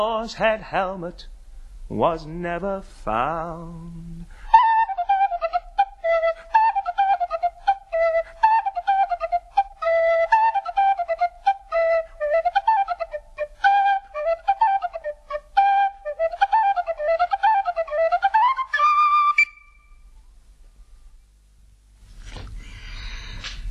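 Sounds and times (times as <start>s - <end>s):
speech: 0.0s - 4.4s
solo penny whistle playing a lively ornamented melody: 4.4s - 20.0s
rustling noise: 21.9s - 23.7s.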